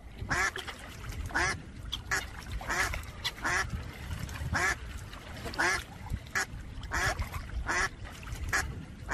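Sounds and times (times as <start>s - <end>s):
low steady background of water and bird noise: 0.0s - 9.1s
ducks quacking among white and black swans: 0.3s - 0.7s, 1.3s - 3.8s, 4.5s - 4.8s, 5.4s - 9.1s.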